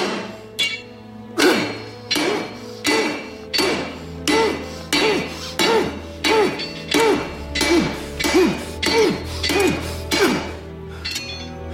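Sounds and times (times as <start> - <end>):
hammer pounding metal on an anvil: 0.0 - 11.6.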